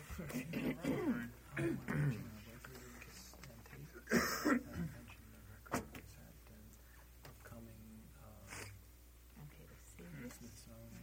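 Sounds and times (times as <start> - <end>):
speech: 0.2 - 2.4
throat clearing: 0.3 - 2.3, 4.1 - 5.0.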